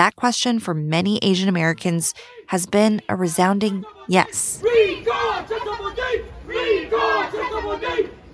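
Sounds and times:
speech: 0.0 - 8.3
crowd of recall activists chanting and yelling outdoors: 3.6 - 8.3.

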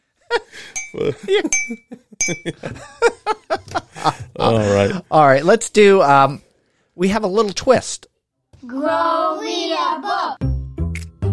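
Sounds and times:
fork clinking against dishware: 0.8 - 2.6
speech: 0.9 - 10.5
people chuckling and murmuring: 1.0 - 1.5, 3.6 - 5.0.

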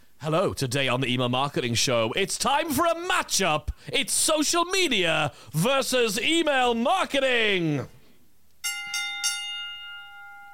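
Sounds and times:
speech: 0.2 - 8.0
bright bell ringing: 8.6 - 10.5.

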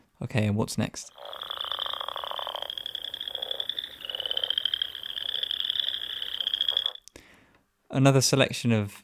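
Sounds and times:
speech: 0.2 - 1.4, 7.9 - 9.0
chorus of croaking frogs: 1.1 - 7.1.

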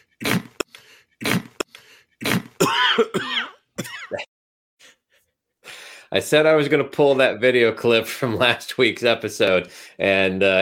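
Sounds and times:
man clearing throat: 0.2 - 4.3
man coughing: 0.3 - 4.3
speech: 6.2 - 10.5.

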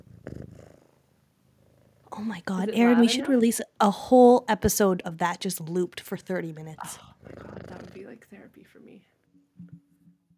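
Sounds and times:
cat purring: 0.0 - 3.8, 5.4 - 8.6
speech: 2.2 - 7.1.

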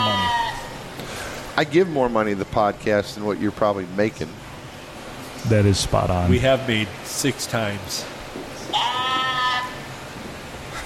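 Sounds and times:
person imitating a sheep bleat: 0.0 - 0.7, 8.7 - 9.8
speech: 1.6 - 4.4, 5.4 - 9.0.

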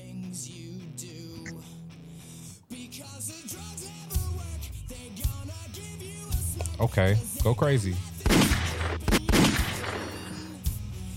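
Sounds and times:
dense loud rock track: 0.0 - 11.1
speech: 6.8 - 8.1
sharp booming gunshot-like blasts: 8.3 - 10.2.

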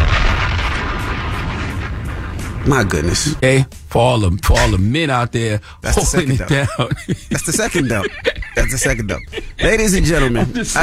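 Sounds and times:
bomb explosion sound effect: 0.0 - 3.4
speech: 2.6 - 10.8
laughter: 5.9 - 10.8.

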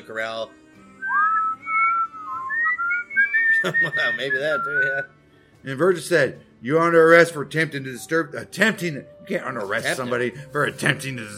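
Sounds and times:
speech: 0.1 - 1.2, 3.6 - 11.3
person whistling a melodic tune: 1.0 - 5.1
laughter: 3.3 - 5.0, 9.6 - 11.0.

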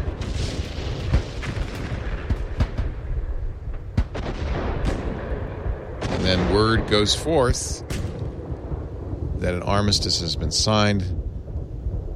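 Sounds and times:
wartime artillery guns firing heavy booms: 0.0 - 7.2, 7.8 - 8.6
constant rumbling noisy background: 0.0 - 12.1
speech: 6.3 - 8.0, 9.4 - 11.2.

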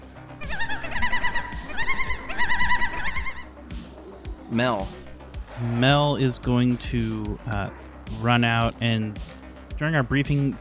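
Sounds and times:
bird calling in wavering warbling bursts: 0.4 - 5.2
speech: 4.5 - 5.0, 5.6 - 10.5.

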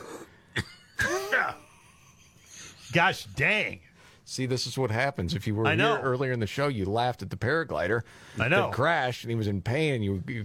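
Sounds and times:
person coughing and choking on something in the throat: 0.0 - 1.7
speech: 2.9 - 10.4.

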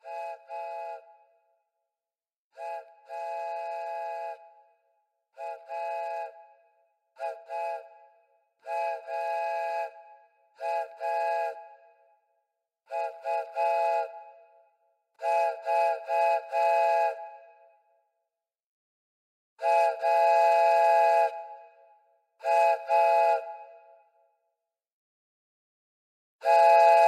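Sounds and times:
train whistle blasts: 0.0 - 1.3, 2.6 - 4.8, 5.4 - 11.8, 12.9 - 14.4, 15.2 - 17.6, 19.6 - 21.7, 22.4 - 23.9, 26.4 - 27.0.

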